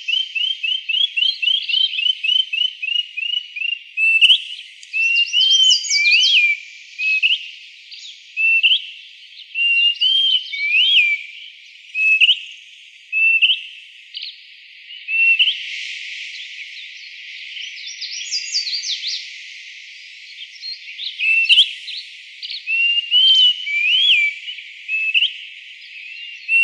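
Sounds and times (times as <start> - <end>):
greater pewee calling upslurred whistled notes in Arizona: 0.0 - 7.5, 8.4 - 8.9, 9.6 - 11.3, 12.0 - 12.4, 13.2 - 14.3, 15.0 - 15.7, 17.6 - 19.2, 21.0 - 21.8, 22.4 - 26.6.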